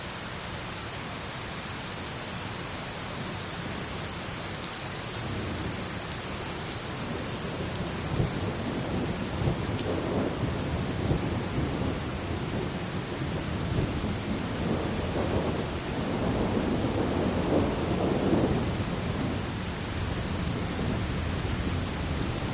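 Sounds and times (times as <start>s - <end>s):
steady rain: 0.0s - 22.5s
low rumble of thunder: 6.8s - 22.5s.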